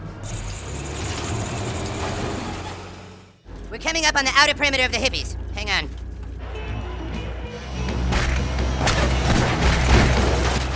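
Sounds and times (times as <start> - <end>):
vehicle engine running and accelerating: 0.0 - 10.7
speech: 3.8 - 6.0.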